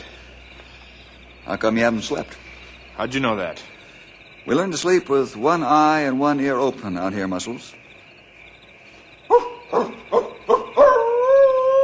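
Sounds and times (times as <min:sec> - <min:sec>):
speech: 0:01.5 - 0:02.4, 0:03.0 - 0:03.7, 0:04.4 - 0:07.8
wolf yelping and howling: 0:09.3 - 0:11.8.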